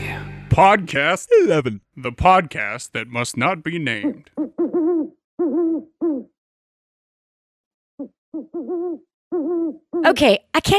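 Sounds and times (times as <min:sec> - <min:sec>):
speech: 0:00.6 - 0:06.3, 0:08.0 - 0:10.7
owl hooting at night: 0:04.0 - 0:06.4, 0:08.0 - 0:10.2.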